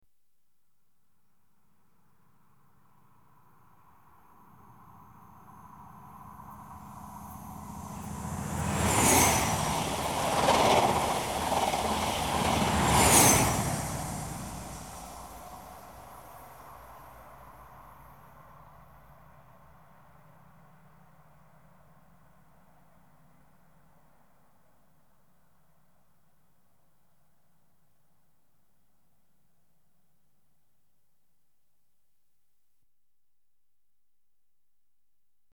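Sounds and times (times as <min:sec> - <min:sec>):
Inter City 125 train passing: 0:04.7 - 0:19.4.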